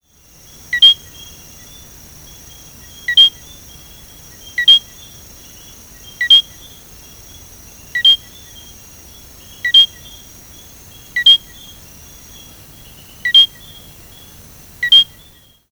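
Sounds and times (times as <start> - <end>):
Eleutherodactylus eileenae calling: 0.0 - 15.7.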